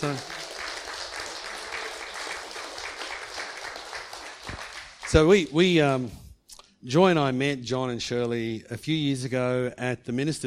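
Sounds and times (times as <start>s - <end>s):
speech: 0.0s - 0.3s, 5.1s - 6.2s, 6.8s - 10.4s
audience applause: 0.0s - 5.5s.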